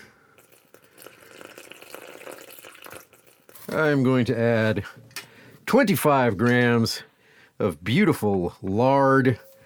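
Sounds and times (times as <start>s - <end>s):
water pouring into a mixing bowl of bread flour, yeast and salt: 0.4s - 3.8s
speech: 3.7s - 5.0s, 5.7s - 9.5s.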